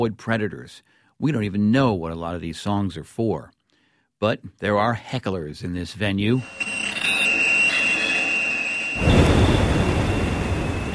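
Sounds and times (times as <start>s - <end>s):
speech: 0.0s - 3.6s, 4.2s - 6.8s
underwater mechanical whine from boats and drilling: 6.0s - 10.9s.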